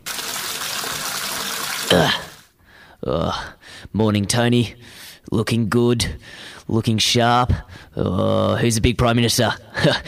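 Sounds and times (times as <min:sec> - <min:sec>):
shower water running: 0:00.0 - 0:02.5
speech: 0:01.9 - 0:02.2, 0:03.0 - 0:10.0.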